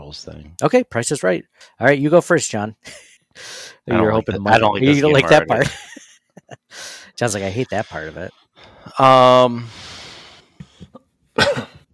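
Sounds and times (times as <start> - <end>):
speech: 0.1 - 9.9, 11.4 - 11.7
breathy exhale: 3.4 - 3.9, 6.7 - 7.2, 9.6 - 10.8
laughter: 4.0 - 6.7, 7.4 - 8.2
throaty cough: 10.8 - 11.9.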